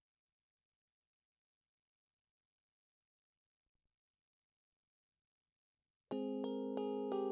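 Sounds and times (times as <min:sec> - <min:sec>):
Rhodes electric piano: 0:06.1 - 0:07.2.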